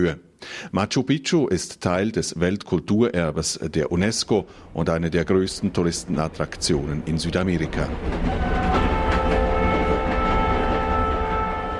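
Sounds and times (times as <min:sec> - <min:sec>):
speech: 0:00.0 - 0:09.0
diesel locomotives rumbling on the old railway through the Urubamba valley: 0:03.8 - 0:11.7
faint rattling from train wheels and cars: 0:05.5 - 0:11.7.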